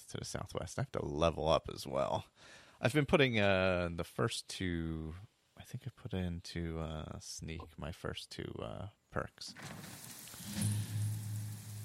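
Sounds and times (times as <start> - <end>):
speech: 0.1 - 10.9
steady rain in a swamp: 9.6 - 11.8.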